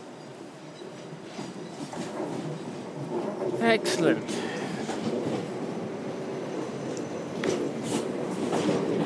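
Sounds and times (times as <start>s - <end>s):
train rumbling into station: 0.0s - 9.0s
train wheels clattering on the rails: 1.3s - 5.6s, 6.5s - 9.0s
speech: 3.6s - 4.5s.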